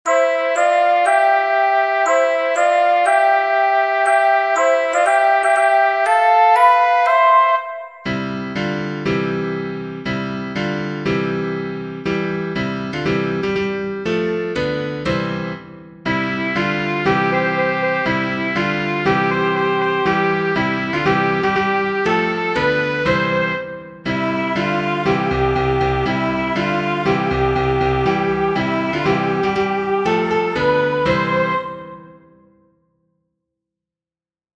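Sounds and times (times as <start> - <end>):
backing track music: 0.1 - 32.5.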